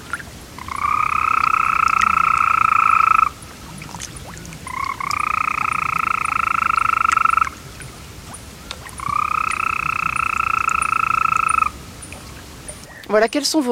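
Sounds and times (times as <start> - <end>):
European green toad giving long musical trills: 0.6 - 3.4, 4.6 - 7.6, 8.9 - 13.4
speech: 13.1 - 13.7.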